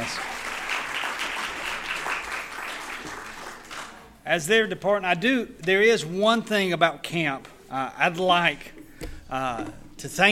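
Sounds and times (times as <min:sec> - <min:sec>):
audience applauding: 0:00.0 - 0:04.2
speech: 0:04.3 - 0:08.7, 0:09.3 - 0:10.2.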